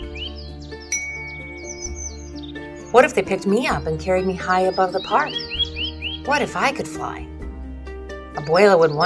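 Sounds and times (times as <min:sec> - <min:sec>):
flock of small birds chirping in a park: 0:00.0 - 0:07.0
speech: 0:02.9 - 0:05.6, 0:06.3 - 0:07.3, 0:08.4 - 0:09.0.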